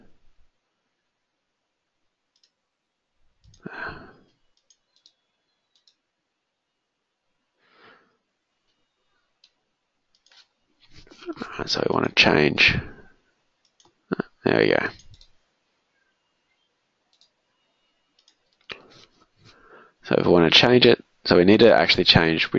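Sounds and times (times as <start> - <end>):
faint computer mouse clicks: 2.3 - 2.6, 3.4 - 3.6, 4.5 - 6.0, 9.4 - 10.6, 13.6 - 14.0, 15.0 - 15.4, 17.1 - 17.4, 18.1 - 19.0
speech: 11.6 - 12.9, 14.5 - 15.0, 20.1 - 22.5.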